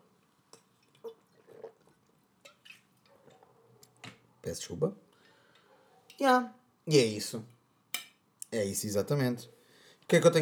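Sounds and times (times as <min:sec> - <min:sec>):
liquid drips: 0:00.5 - 0:03.5
person sipping and swallowing water: 0:00.8 - 0:02.1
speech: 0:04.5 - 0:05.1, 0:06.2 - 0:07.5, 0:08.5 - 0:10.4.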